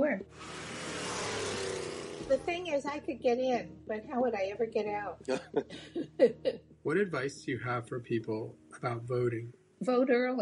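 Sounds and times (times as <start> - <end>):
vintage Corvette engine rumbling and revving: 0.3 - 2.7
speech: 2.3 - 10.4
laughter: 5.3 - 6.5.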